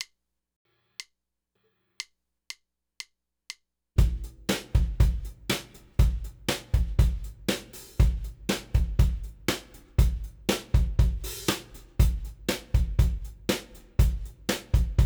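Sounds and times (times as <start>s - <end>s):
pop drum beat: 4.0s - 15.0s.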